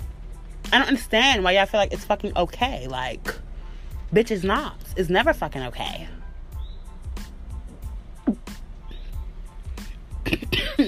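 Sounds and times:
speech: 0:00.7 - 0:03.4, 0:04.1 - 0:06.2
harsh coughs from someone getting over a cold: 0:10.2 - 0:10.8.

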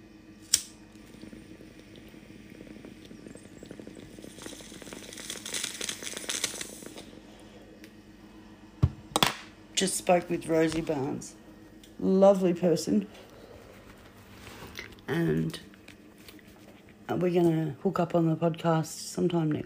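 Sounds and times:
water bubbling in a water pipe chamber: 0:00.9 - 0:07.3
speech: 0:09.8 - 0:11.4, 0:12.0 - 0:13.3, 0:15.1 - 0:15.7, 0:17.1 - 0:19.6.

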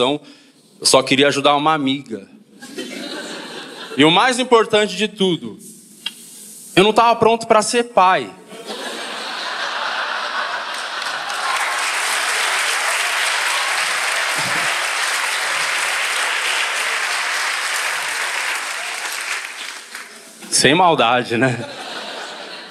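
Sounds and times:
speech: 0:00.0 - 0:02.8, 0:04.0 - 0:05.6, 0:06.8 - 0:08.4, 0:20.6 - 0:21.8
scattered audience chuckles: 0:02.6 - 0:04.0, 0:08.5 - 0:16.0, 0:21.4 - 0:22.6
sustained audience applause: 0:09.4 - 0:20.5.

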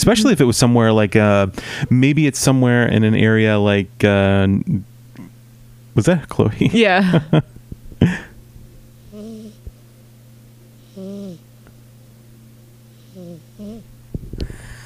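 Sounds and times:
speech: 0:00.0 - 0:04.9, 0:06.0 - 0:08.2
small pet snoring: 0:09.0 - 0:09.6, 0:10.8 - 0:11.4, 0:12.9 - 0:13.9.

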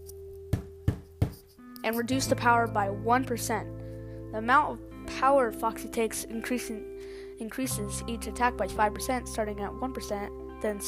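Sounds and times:
loud knocking on an office door in a video game: 0:00.5 - 0:01.4
speech: 0:01.8 - 0:10.8.

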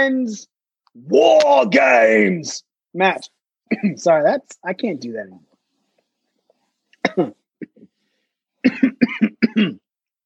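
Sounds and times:
speech: 0:00.0 - 0:05.5, 0:07.2 - 0:07.4, 0:08.6 - 0:09.8
person coughing: 0:03.7 - 0:04.0, 0:07.0 - 0:07.9, 0:08.6 - 0:09.9.

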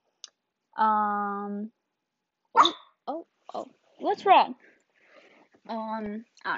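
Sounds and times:
speech: 0:00.8 - 0:01.8, 0:03.1 - 0:04.7, 0:05.6 - 0:06.5
dog barking: 0:02.6 - 0:02.9.

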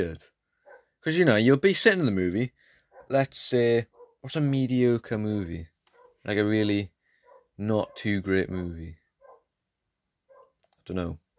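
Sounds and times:
speech: 0:00.0 - 0:00.4, 0:01.0 - 0:06.9, 0:07.6 - 0:09.0, 0:10.9 - 0:11.2
dog bark from another room: 0:00.6 - 0:01.0, 0:02.9 - 0:03.2, 0:03.9 - 0:04.2, 0:05.9 - 0:06.3, 0:07.2 - 0:08.1, 0:09.2 - 0:09.5, 0:10.3 - 0:10.6.

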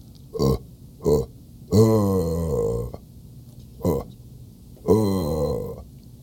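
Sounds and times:
person vocally imitating a deer buck grunt call: 0:00.3 - 0:03.0, 0:03.8 - 0:04.1, 0:04.8 - 0:05.9.

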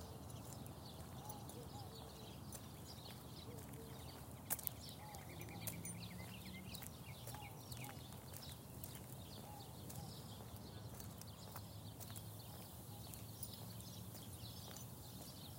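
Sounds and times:
birds chirping at sunrise in Phoenix Arizona: 0:00.0 - 0:15.5.

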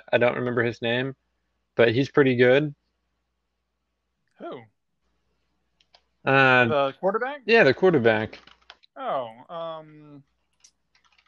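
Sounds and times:
speech: 0:00.1 - 0:01.2, 0:01.8 - 0:02.8, 0:04.4 - 0:04.7, 0:06.2 - 0:10.3
computer keyboard clicks: 0:08.4 - 0:08.8, 0:10.6 - 0:11.2.

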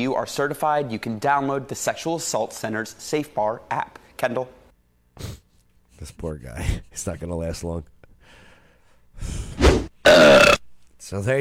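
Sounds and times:
speech: 0:00.0 - 0:04.6, 0:06.0 - 0:07.9, 0:11.1 - 0:11.3
loud rough burp from a cartoon character: 0:10.0 - 0:10.7.

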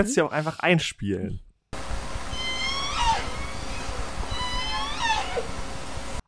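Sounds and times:
speech: 0:00.0 - 0:01.4
underwater noise: 0:02.1 - 0:06.2
dolphin whistles: 0:02.3 - 0:05.5.

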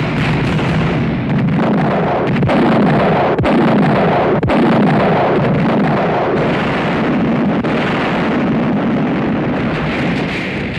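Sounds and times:
artillery firing in a tank battle scene from a 1970 war film: 0:00.0 - 0:10.7
explosions in a tank battle scene from a 1970 war film: 0:00.0 - 0:10.7.

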